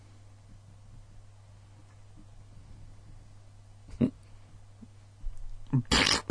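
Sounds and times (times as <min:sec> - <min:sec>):
voice imitating a fart with sputtering bursts and raspberry blast: 0:05.8 - 0:06.2.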